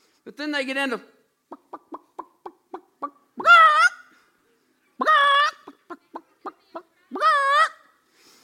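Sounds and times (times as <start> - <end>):
speech: 0.2 - 1.9
voice imitating a hen cackling in a hen house: 1.5 - 4.0, 5.0 - 7.9.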